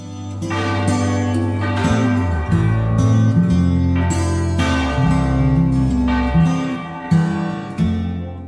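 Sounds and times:
several church bells pealing together: 0.0s - 8.4s.

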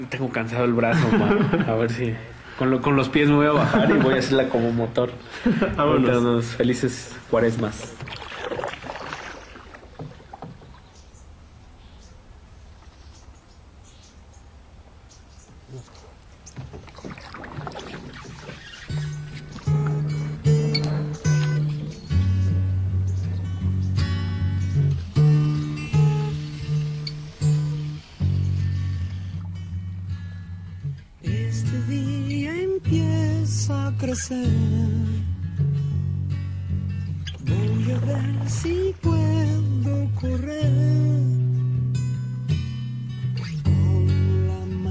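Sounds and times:
speech: 0.0s - 8.2s
steady wash of noise: 0.0s - 44.9s
laughter: 0.8s - 2.3s, 3.4s - 6.2s
oar strokes of a rowed boat splashing through water: 7.0s - 11.5s, 15.4s - 22.5s, 37.2s - 40.3s.

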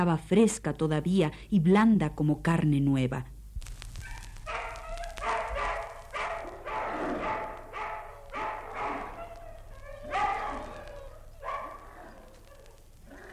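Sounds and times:
speech: 0.0s - 3.4s
hungry dogs growling and yelping: 4.2s - 13.3s.

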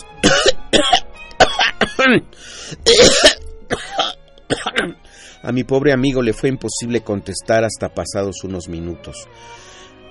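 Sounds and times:
person coughing: 0.2s - 5.0s
speech: 2.1s - 3.8s, 5.5s - 9.8s
person gasping: 2.3s - 3.0s, 5.0s - 5.4s.

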